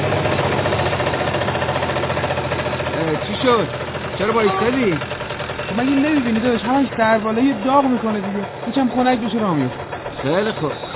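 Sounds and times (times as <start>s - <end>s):
motorcycle engine idling with rough rattling chug: 0.0s - 10.9s
speech: 3.4s - 10.8s.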